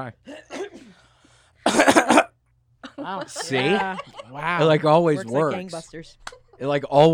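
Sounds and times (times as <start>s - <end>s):
speech: 0.0s - 0.5s, 3.0s - 7.1s
harsh loud coughs: 0.3s - 2.4s
laughter: 2.8s - 7.1s.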